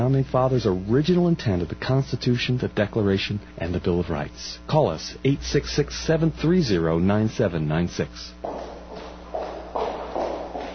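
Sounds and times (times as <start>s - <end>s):
speech: 0.0s - 8.7s
footsteps on a hard street surface: 8.4s - 10.7s.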